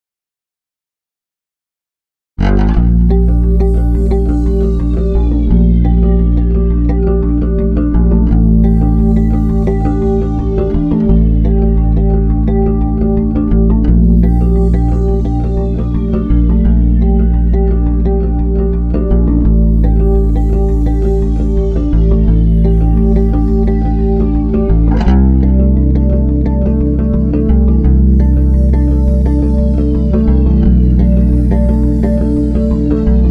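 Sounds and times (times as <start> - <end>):
expansive guitar effect patch with chorus and delay: 2.4 - 33.2.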